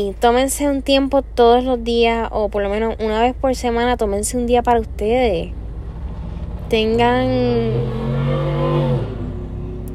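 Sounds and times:
speech: 0:00.0 - 0:05.6, 0:06.7 - 0:08.5
motorcycle roaring past outside: 0:05.5 - 0:09.9.

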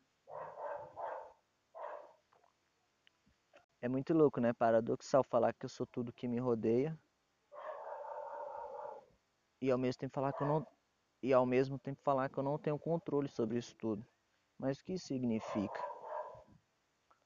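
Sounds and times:
dog barking: 0:00.3 - 0:02.2, 0:07.6 - 0:09.1, 0:10.3 - 0:10.7, 0:15.4 - 0:16.5
speech: 0:03.8 - 0:07.0, 0:09.6 - 0:15.9.

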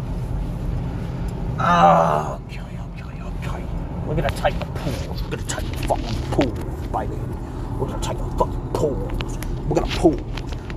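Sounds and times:
loud car engine rumbling: 0:00.0 - 0:10.7
speech: 0:01.6 - 0:02.4, 0:04.1 - 0:10.6.

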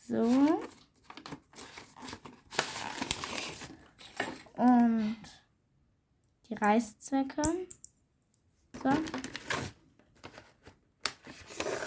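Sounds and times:
speech: 0:00.1 - 0:00.7, 0:06.6 - 0:07.8, 0:08.8 - 0:09.3
crinkling and rustling of a homemade Easter gift being folded: 0:01.0 - 0:04.5, 0:09.0 - 0:11.8.

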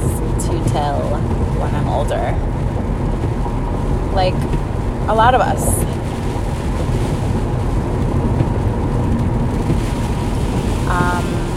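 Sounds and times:
heavy rain pouring outdoors: 0:00.0 - 0:11.5
speech: 0:04.2 - 0:06.0.

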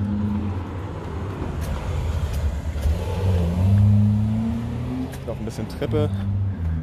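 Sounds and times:
police car engine rumbling as it drives past and accelerates: 0:00.0 - 0:06.8
speech: 0:05.5 - 0:06.3.

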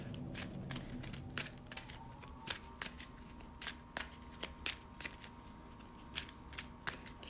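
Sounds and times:
deck of playing cards being shuffled: 0:00.0 - 0:07.2
faint hum: 0:00.0 - 0:07.2.

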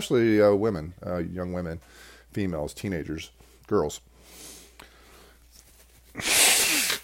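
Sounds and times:
speech: 0:00.0 - 0:04.5, 0:06.2 - 0:06.4
person blowing their nose: 0:06.1 - 0:07.0.

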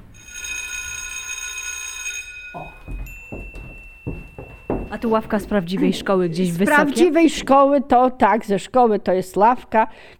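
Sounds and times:
electric school bell ringing with a metallic clatter: 0:00.0 - 0:07.0
speech: 0:04.9 - 0:10.1.

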